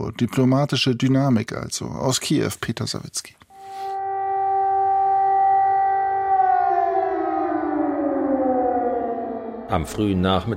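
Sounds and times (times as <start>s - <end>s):
speech: 0.1s - 3.4s, 9.7s - 10.5s
air raid siren in Kyiv warning of ballistic missiles: 3.5s - 10.5s.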